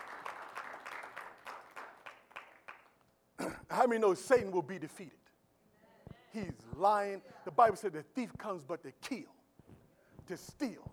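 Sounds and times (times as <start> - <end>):
scattered applause: 0.0 - 3.0
crowd clapping in a steady rhythmic beat: 0.0 - 3.2
speech: 3.4 - 5.2, 6.3 - 9.4, 10.3 - 10.9.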